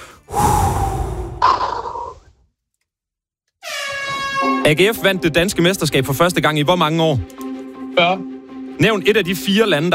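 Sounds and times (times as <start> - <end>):
deep breaths drawn in together: 0.0 - 1.5
speech: 4.7 - 7.4, 8.0 - 9.9.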